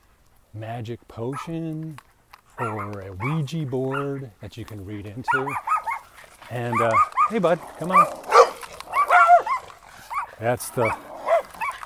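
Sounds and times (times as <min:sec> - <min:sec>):
speech: 0:00.5 - 0:05.7, 0:06.5 - 0:08.2, 0:10.4 - 0:11.1
dog barking behind fence: 0:01.3 - 0:01.6, 0:02.6 - 0:04.2, 0:05.3 - 0:11.8.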